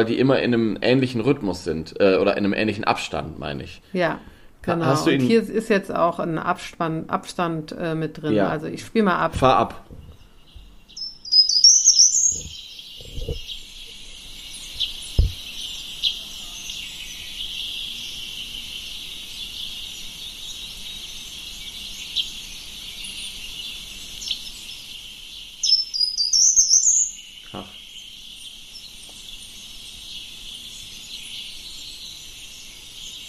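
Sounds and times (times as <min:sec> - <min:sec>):
speech: 0:00.0 - 0:10.0
short-toed treecreeper singing a brief high phrase: 0:09.1 - 0:33.2.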